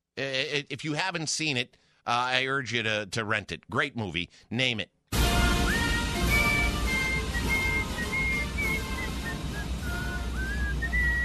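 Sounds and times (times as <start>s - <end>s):
speech: 0.3s - 5.0s
person whistling a tune: 5.5s - 11.2s
steady low rumbling background: 5.6s - 11.2s.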